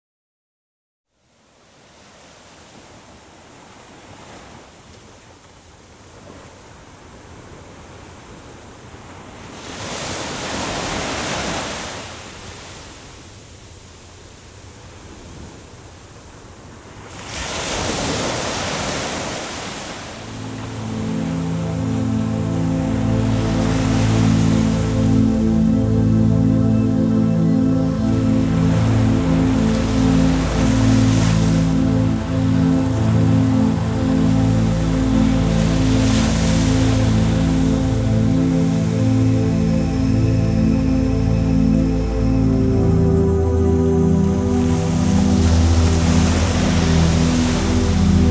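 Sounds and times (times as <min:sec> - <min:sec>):
ocean waves: 0:01.5 - 0:48.3
relaxation music: 0:20.2 - 0:48.3.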